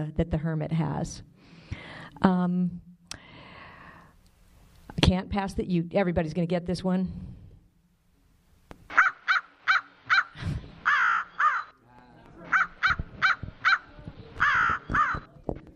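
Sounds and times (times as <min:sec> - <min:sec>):
speech: 0:00.0 - 0:02.9, 0:05.0 - 0:07.3
American crow cawing: 0:08.9 - 0:11.8, 0:12.4 - 0:15.3.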